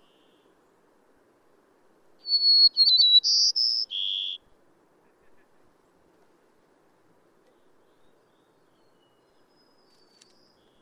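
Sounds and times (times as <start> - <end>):
bird whistled phrase with warbled twitter: 2.2 - 4.4.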